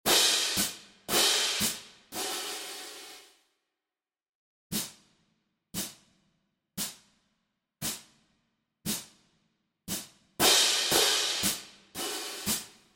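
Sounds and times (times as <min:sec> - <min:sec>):
marching cymbals cadence: 0:00.1 - 0:03.3, 0:10.4 - 0:12.7.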